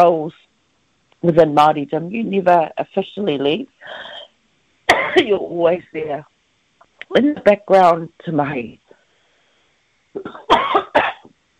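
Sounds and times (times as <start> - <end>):
speech: 0.0 - 0.4, 1.2 - 4.2, 5.2 - 6.3, 7.1 - 8.8, 10.2 - 10.8
person coughing: 4.9 - 5.3, 10.2 - 11.3.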